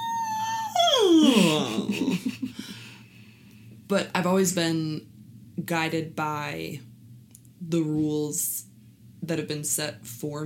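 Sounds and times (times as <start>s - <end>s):
dog waking up giving a whining howl: 0.0s - 1.8s
dog whimpering: 0.0s - 2.2s
speech: 3.9s - 6.9s, 7.6s - 10.4s.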